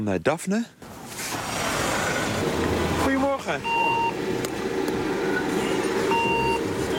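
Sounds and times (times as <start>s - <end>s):
speech: 0.0s - 0.9s, 3.5s - 3.9s
small eight-seat community minibus engine rumbling at a bus stop: 0.8s - 6.9s
electronic beep: 3.6s - 4.2s, 5.3s - 6.6s.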